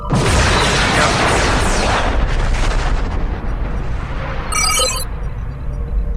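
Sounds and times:
photon torpedoes exploding and destroying a starship in a space combat video game: 0.0s - 6.0s
short bright electronic tone: 4.5s - 5.1s.

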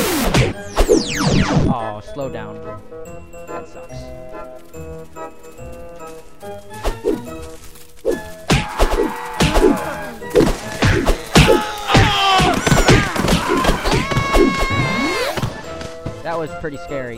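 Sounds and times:
video game punching impact effects: 0.0s - 1.1s, 8.5s - 15.5s
busy video game noise: 0.0s - 17.1s
speech: 1.7s - 6.8s, 16.3s - 17.1s.

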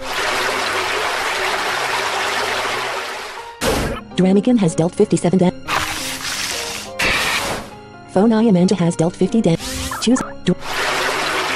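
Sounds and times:
gushing water spray sound effect for a video game attack move: 0.0s - 3.9s, 5.7s - 7.7s, 9.6s - 11.5s
speech: 4.2s - 5.6s, 8.2s - 10.6s.

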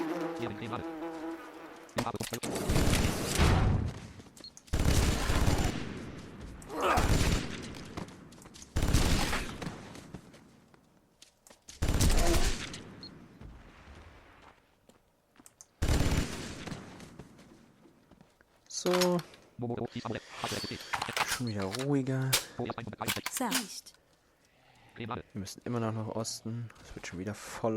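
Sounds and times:
speech: 0.4s - 1.0s, 2.0s - 3.6s, 18.9s - 24.0s, 25.0s - 27.7s
rotary Vulkan cannon fire in a video game: 2.6s - 4.1s, 4.7s - 10.0s, 11.8s - 14.3s, 15.8s - 17.1s.

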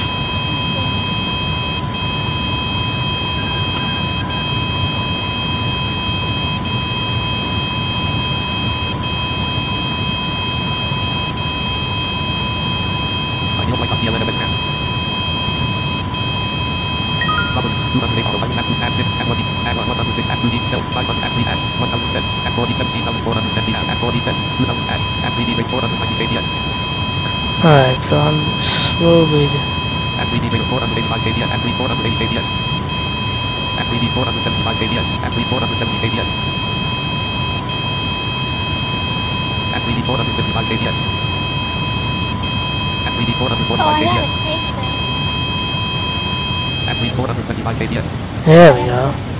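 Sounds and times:
indistinct voices: 0.0s - 0.9s, 13.6s - 14.6s, 17.2s - 29.6s, 30.2s - 32.5s, 33.6s - 36.3s, 39.7s - 40.9s, 43.0s - 45.1s, 46.9s - 49.2s
cockpit stall warning alarm buzzing: 0.0s - 47.3s
speech: 27.6s - 32.7s, 33.9s - 36.7s, 39.8s - 41.2s, 43.2s - 44.7s, 47.0s - 49.3s.

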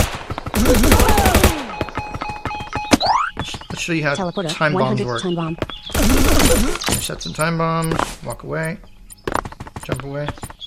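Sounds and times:
video game machine gun fire: 0.0s - 1.7s, 5.9s - 6.8s
electronic video game effects: 0.6s - 8.0s
speech: 3.9s - 8.9s, 9.9s - 10.4s.

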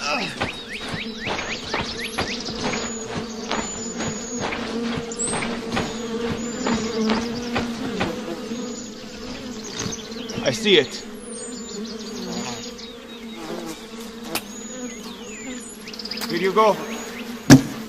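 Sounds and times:
bees buzzing around a hive: 0.0s - 17.8s
speech: 10.5s - 11.1s, 16.5s - 16.9s.

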